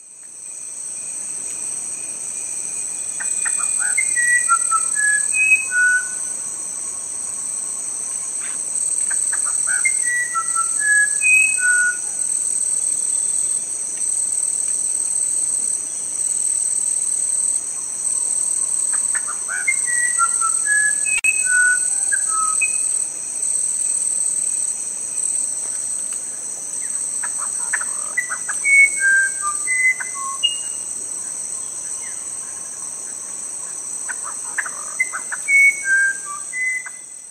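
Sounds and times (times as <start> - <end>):
steady high drone of crickets and insects: 0.0 - 37.3
musician wren singing flute-like whistled notes: 1.6 - 12.3, 15.9 - 23.1, 23.8 - 32.8, 34.1 - 37.3.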